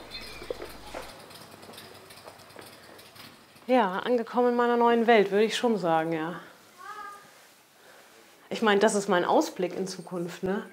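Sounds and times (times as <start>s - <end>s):
children in a village: 0.0s - 3.1s, 6.6s - 7.5s
speech: 3.7s - 6.5s, 8.5s - 10.7s
steady soft hiss: 4.8s - 10.4s.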